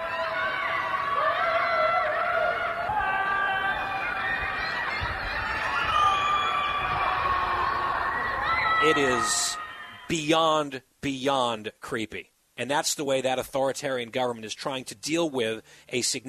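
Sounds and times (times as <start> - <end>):
many people wailing and screaming from apartment windows: 0.0 - 10.1
speech: 8.8 - 16.2.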